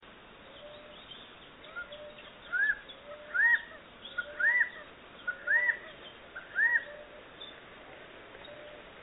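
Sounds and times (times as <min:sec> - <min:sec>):
Callipepla californica: 0:01.6 - 0:07.2.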